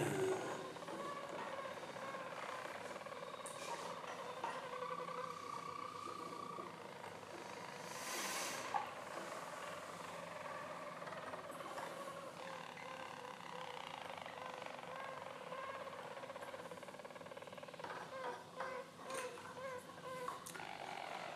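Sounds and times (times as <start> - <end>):
Harz roller canaries singing in chorus: 0.0 - 9.1, 9.7 - 21.3.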